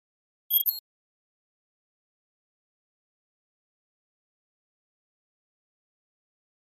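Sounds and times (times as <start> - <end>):
electronic double flash beep: 0.5 - 0.8.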